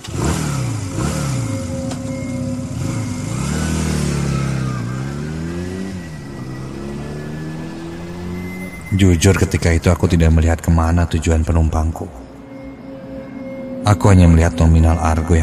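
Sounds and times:
ride-hailing motorcycle taxi engine revving and accelerating: 0.0 - 9.9
speech: 9.0 - 12.2, 13.9 - 15.4.

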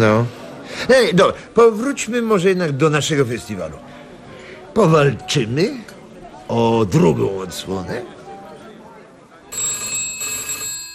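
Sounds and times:
speech: 0.0 - 4.0, 4.8 - 5.9, 6.5 - 8.2
telephone ringing in a newspaper editorial office: 9.5 - 10.9.

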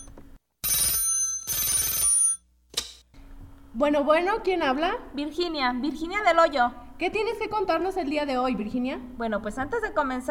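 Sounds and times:
telephone bell ringing for an incoming call: 0.0 - 2.4
speech: 3.8 - 10.2.

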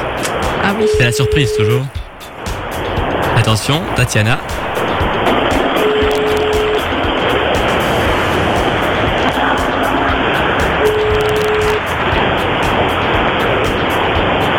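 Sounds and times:
faint brief steady tones over a telephone line: 0.0 - 14.5
car noise heard over a telephone line: 0.6 - 2.1, 3.3 - 14.5
speech: 0.7 - 2.0, 3.4 - 4.9.

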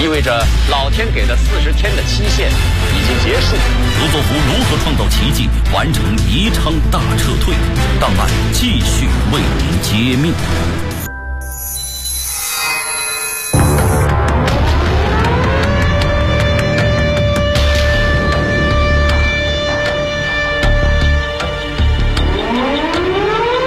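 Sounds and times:
speech: 0.1 - 10.9
air raid warning siren sounding over a city: 13.6 - 23.6.

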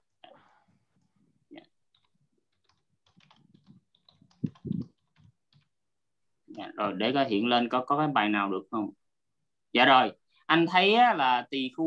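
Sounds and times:
typing on a computer keyboard to enter a search: 1.9 - 5.8
speech: 6.8 - 9.0, 9.7 - 11.8.

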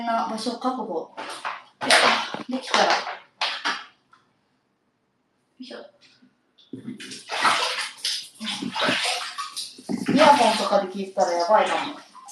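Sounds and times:
speech: 0.0 - 3.2, 5.6 - 6.1, 6.7 - 7.8, 10.1 - 12.1
shower running in a bathroom: 7.0 - 12.2.

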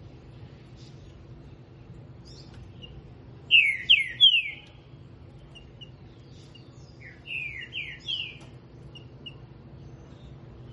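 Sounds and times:
green-winged saltator singing in the morning: 2.2 - 4.8, 5.4 - 10.7.

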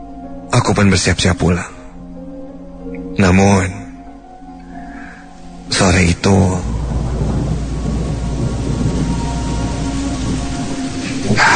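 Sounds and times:
speech: 0.7 - 1.8, 3.2 - 3.8, 5.8 - 6.7
heavy rain pouring: 4.6 - 11.5
low thunder rumbling: 5.6 - 11.5.

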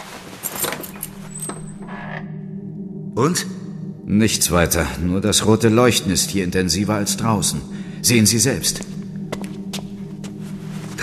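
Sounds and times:
keys jingling: 0.4 - 1.8
door creaking as it is opened a crack: 0.5 - 2.4
speech: 3.2 - 9.0.

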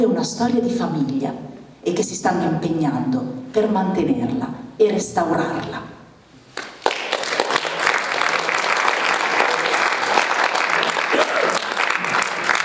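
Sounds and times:
speech: 0.1 - 5.9
audience applause after a reading: 6.6 - 12.6.

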